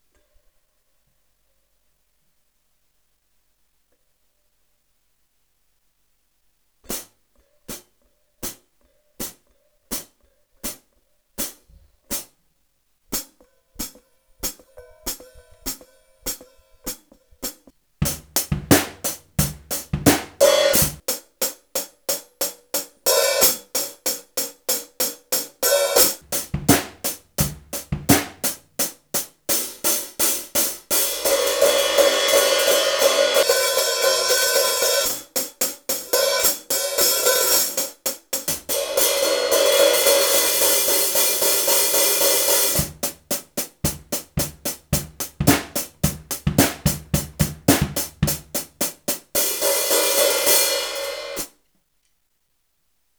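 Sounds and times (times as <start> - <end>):
Zildjian hi-hat cymbals: 13.1 - 51.5.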